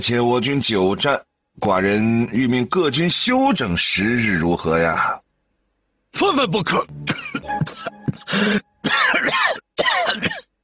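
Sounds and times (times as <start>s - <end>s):
speech: 0.0s - 5.2s, 6.1s - 10.4s
person coughing after choking on tea: 7.0s - 10.5s.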